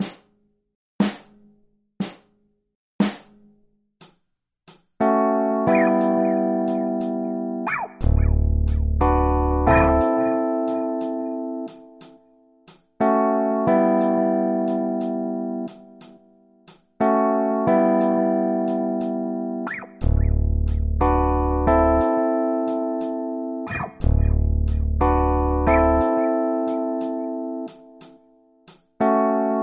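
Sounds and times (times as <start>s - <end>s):
12-bar blues quick change chord progressions in A: 5.0s - 12.2s, 13.0s - 16.3s, 17.0s - 29.6s.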